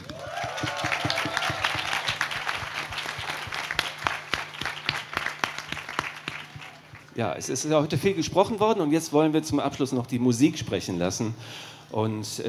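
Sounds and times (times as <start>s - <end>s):
audience applauding: 0.0s - 7.2s
speech: 7.2s - 12.4s.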